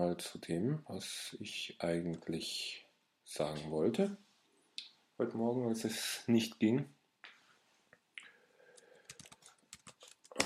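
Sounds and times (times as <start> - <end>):
speech: 0.0 - 4.3, 5.2 - 7.0
typing on a computer keyboard: 8.8 - 10.4.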